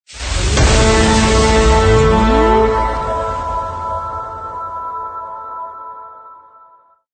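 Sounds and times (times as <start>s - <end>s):
epic impact logo sound: 0.1s - 5.8s.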